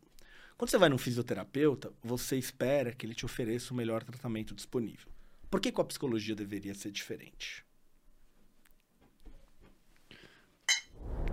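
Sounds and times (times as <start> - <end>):
speech: 0.6 - 7.7
glasses clinking in a toast: 10.7 - 10.9
low rumbling rustle: 11.0 - 11.3.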